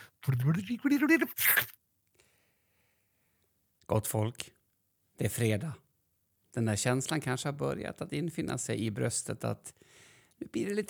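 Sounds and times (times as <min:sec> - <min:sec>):
speech: 0:00.2 - 0:01.8, 0:03.9 - 0:04.6, 0:05.2 - 0:05.8, 0:06.6 - 0:10.8
voice imitating a tape rewinding: 0:00.2 - 0:01.8.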